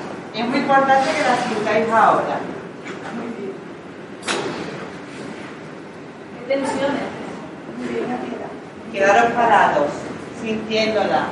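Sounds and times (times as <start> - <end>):
speech: 0.4 - 2.6, 6.5 - 7.1, 7.8 - 11.3
chairs pushed back and dragged across a hard floor: 0.8 - 1.9, 4.6 - 5.6.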